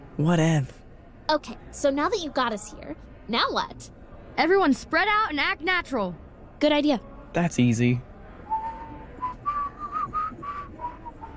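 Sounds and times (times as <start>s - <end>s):
speech: 0.2s - 8.1s
person whistling a short wavering tune: 8.5s - 11.3s.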